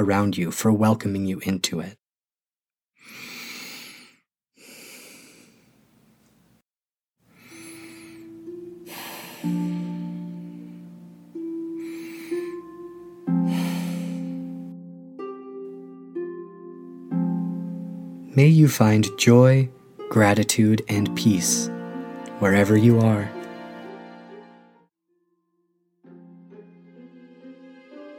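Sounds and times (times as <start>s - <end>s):
speech: 0.0s - 2.0s, 18.4s - 21.8s, 22.4s - 23.4s
deep slow breaths: 3.0s - 6.0s, 7.3s - 10.9s, 11.8s - 12.7s, 13.3s - 14.7s.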